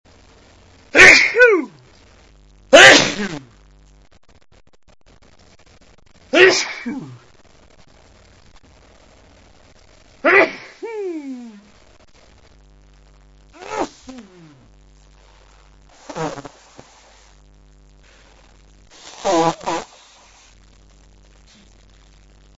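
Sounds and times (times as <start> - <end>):
man with a cold coughing: 1.0 - 1.7, 2.8 - 3.4, 6.4 - 7.2, 10.2 - 11.6.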